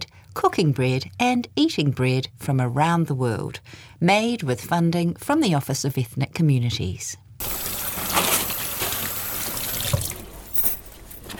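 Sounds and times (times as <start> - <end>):
speech: 0.4 - 7.2
hands washed under running water: 7.4 - 11.0.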